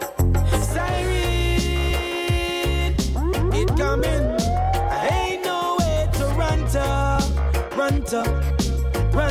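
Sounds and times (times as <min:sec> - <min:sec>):
loud dense music with heavy bass and steady beat: 0:00.1 - 0:09.2
police car siren wailing: 0:03.2 - 0:06.6.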